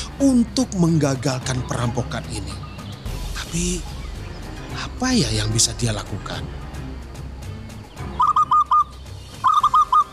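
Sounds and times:
speech: 0.2s - 2.7s, 3.5s - 3.9s, 4.7s - 6.6s
zebra dove cooing: 8.2s - 10.1s.

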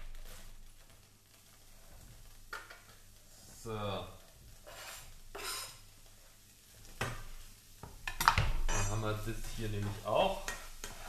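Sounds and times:
onions, garlic and chorizo frying in leftover oil in a pan: 0.0s - 11.0s
speech: 3.6s - 4.2s, 9.1s - 10.5s
stirring scrapes: 4.4s - 5.8s, 8.8s - 11.0s.

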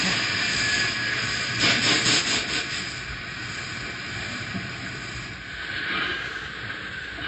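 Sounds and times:
train brakes squealing on a curve: 0.0s - 2.8s
broad rushing hiss of braking train: 0.0s - 7.2s
train low rumble while braking: 0.0s - 7.2s.

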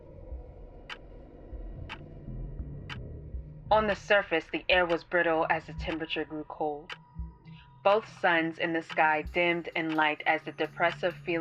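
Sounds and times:
low continuous rumble: 0.0s - 11.3s
clock ticking: 2.9s - 11.3s
speech: 3.7s - 7.0s, 7.8s - 11.3s.

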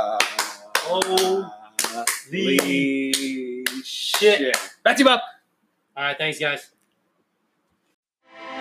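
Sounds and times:
soft golf-clap style hand claps: 0.2s - 4.8s
speech: 0.9s - 5.3s, 6.0s - 6.8s.

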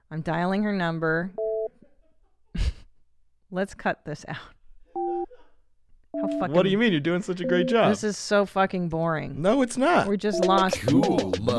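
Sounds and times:
speech: 0.1s - 1.4s, 3.5s - 4.6s, 6.2s - 11.5s
brief steady two-pitch tone: 6.2s - 6.6s, 7.4s - 8.0s
telephone dialing tone for an online call: 6.2s - 6.6s, 7.4s - 8.0s, 10.3s - 10.8s
long pitch-varying voiced sound: 7.4s - 8.1s, 10.4s - 11.5s.

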